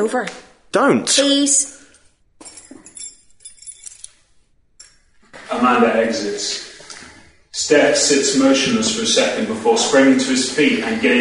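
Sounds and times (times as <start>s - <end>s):
speech: 0.0s - 1.8s, 5.5s - 6.7s, 7.6s - 11.1s
keys jangling as they are handed over: 2.4s - 5.1s.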